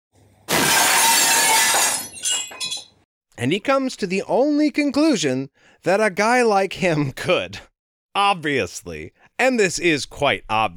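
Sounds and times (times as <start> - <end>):
glass shattering: 0.5 - 3.0
glass shards tinkling: 1.4 - 3.0
speech: 3.4 - 10.7.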